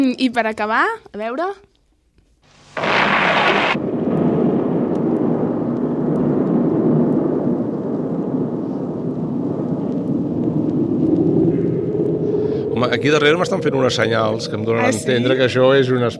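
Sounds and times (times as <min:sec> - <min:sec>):
speech: 0:00.0 - 0:01.7, 0:12.8 - 0:16.1
rocket launch roar: 0:02.6 - 0:15.0.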